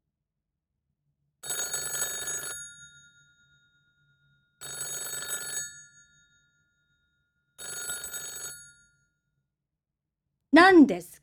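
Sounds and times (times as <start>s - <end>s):
telephone bell ringing: 1.4s - 9.1s
speech: 10.6s - 11.1s.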